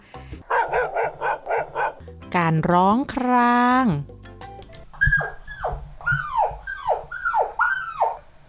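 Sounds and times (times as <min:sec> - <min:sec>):
dog barking: 0:00.5 - 0:02.0, 0:05.0 - 0:08.2
speech: 0:02.3 - 0:04.2.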